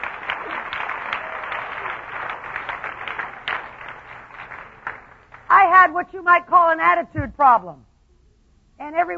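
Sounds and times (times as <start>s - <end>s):
crowd applauding: 0.0s - 5.5s
speech: 5.8s - 7.9s, 8.8s - 9.1s.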